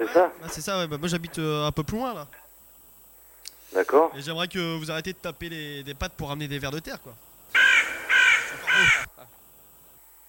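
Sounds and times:
speech: 0:00.0 - 0:02.4, 0:03.7 - 0:07.2, 0:08.8 - 0:09.1
crow cawing: 0:03.1 - 0:03.7, 0:07.5 - 0:09.1.

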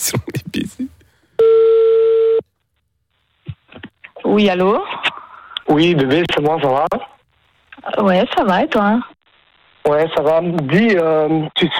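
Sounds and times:
phone ringback tone on an outgoing call: 0:01.4 - 0:02.4
speech: 0:04.3 - 0:04.9, 0:05.7 - 0:07.1, 0:07.9 - 0:09.1, 0:09.8 - 0:11.7.

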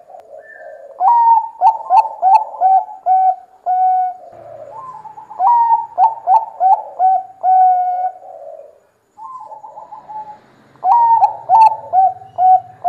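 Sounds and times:
zebra dove singing clipped cooing notes: 0:00.0 - 0:12.8.

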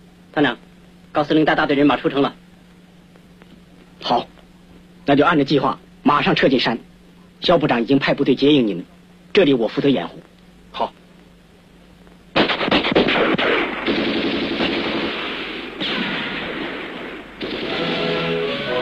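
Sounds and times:
speech: 0:00.4 - 0:02.4, 0:04.0 - 0:04.3, 0:05.1 - 0:11.0
enemy machine-gun fire during an uprising in an old city: 0:12.3 - 0:18.7.

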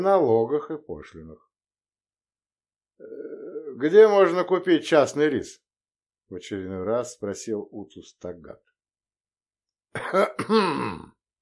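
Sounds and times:
speech: 0:00.0 - 0:01.5, 0:03.0 - 0:05.6, 0:06.3 - 0:08.7, 0:10.0 - 0:11.1
man clearing his throat: 0:09.9 - 0:11.2.

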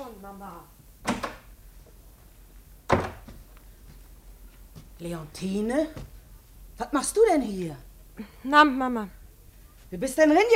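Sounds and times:
speech: 0:00.1 - 0:01.3, 0:05.0 - 0:06.2, 0:06.8 - 0:09.2, 0:09.9 - 0:10.5
hollow wooden thunks of a door being opened in an old house: 0:02.9 - 0:03.5.

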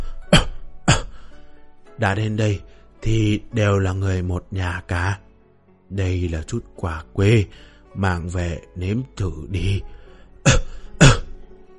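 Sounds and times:
person coughing dry coughs: 0:00.0 - 0:01.2, 0:10.5 - 0:11.4
speech: 0:02.0 - 0:05.3, 0:05.9 - 0:11.2.

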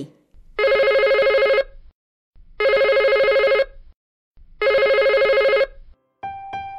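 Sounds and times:
telephone bell ringing: 0:00.6 - 0:01.7, 0:02.6 - 0:03.8, 0:04.6 - 0:05.8.

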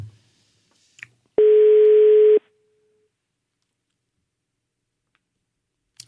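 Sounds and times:
telephone ringing tone on an unanswered call in Italy: 0:01.4 - 0:02.4.

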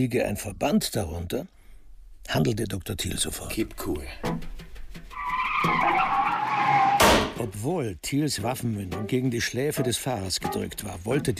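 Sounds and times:
speech: 0:00.0 - 0:01.6, 0:02.2 - 0:04.5, 0:05.6 - 0:05.9, 0:07.4 - 0:11.3
car tires screeching while swerving across the oncoming lane: 0:04.8 - 0:07.4.

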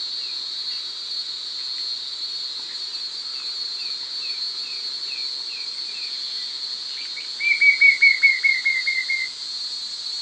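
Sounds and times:
White-shouldered fire-eye Pyriglena leucoptera song: 0:07.1 - 0:09.3.

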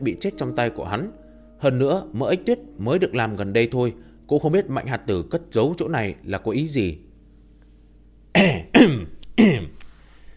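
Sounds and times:
speech: 0:00.0 - 0:07.1, 0:08.4 - 0:09.8
dry cough: 0:08.4 - 0:09.8
throat clearing: 0:08.4 - 0:09.8.

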